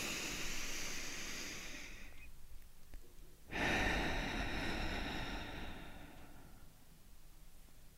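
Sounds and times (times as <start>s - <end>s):
deep breath in and out: 0.0s - 2.3s, 3.5s - 6.9s.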